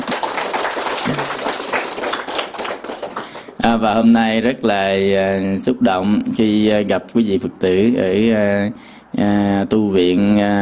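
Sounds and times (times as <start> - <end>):
audience applause: 0.0 - 3.6
speech: 3.6 - 10.6.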